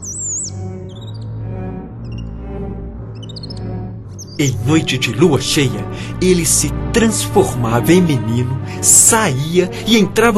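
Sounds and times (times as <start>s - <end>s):
high whistling bird calls: 0.0s - 1.3s
steady low musical drone: 0.0s - 10.3s
speech: 4.4s - 10.3s.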